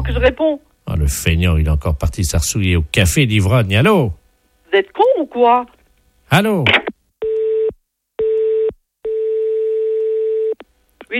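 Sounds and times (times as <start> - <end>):
speech: 0.1 - 6.9
telephone line tone while a call goes unanswered: 7.2 - 10.6.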